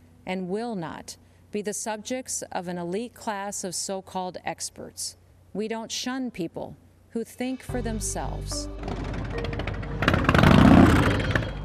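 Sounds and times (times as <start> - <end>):
speech: 0.3 - 9.6
several motorcycle engines rumbling and revving at a motorcycle rally: 8.8 - 11.6.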